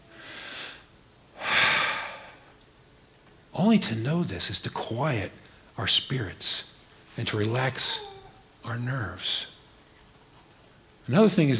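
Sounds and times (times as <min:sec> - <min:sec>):
deep human breathing: 0:00.1 - 0:02.6
speech: 0:03.6 - 0:09.5, 0:11.1 - 0:11.5.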